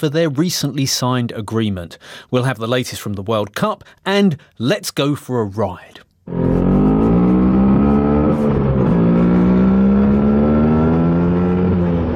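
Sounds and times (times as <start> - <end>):
speech: 0.0 - 6.8
Vespa scooter engine revving: 6.3 - 12.1.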